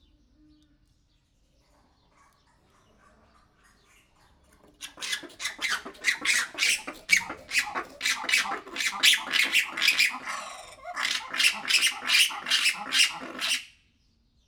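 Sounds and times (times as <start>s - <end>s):
black-and-white ruffed lemur monologue at Debrecen zoo: 4.7s - 13.7s.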